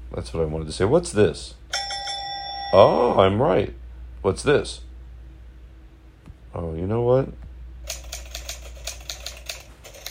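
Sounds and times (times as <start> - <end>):
speech: 0.1 - 1.6, 2.7 - 4.9, 6.5 - 7.4
typewriter keys clacking: 7.9 - 10.0.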